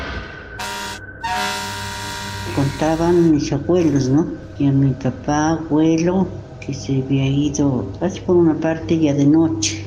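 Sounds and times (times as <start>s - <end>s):
car horn blaring: 0.6s - 4.2s
speech: 2.6s - 9.8s.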